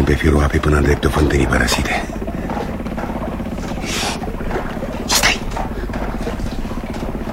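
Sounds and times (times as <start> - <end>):
pilot boat engine droning on a river: 0.0 - 7.3
speech: 0.1 - 2.2.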